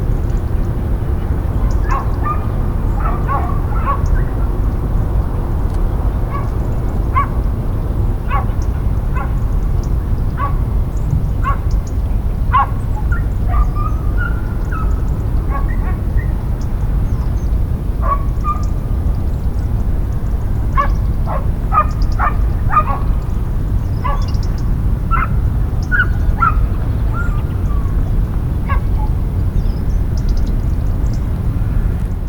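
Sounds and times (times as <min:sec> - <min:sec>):
low roar of highway traffic: 0:00.0 - 0:32.2
dogs barking near a highway bridge: 0:01.4 - 0:04.6, 0:06.2 - 0:07.4, 0:08.2 - 0:11.8, 0:12.4 - 0:16.8, 0:18.0 - 0:18.8, 0:20.7 - 0:28.0, 0:28.6 - 0:29.2.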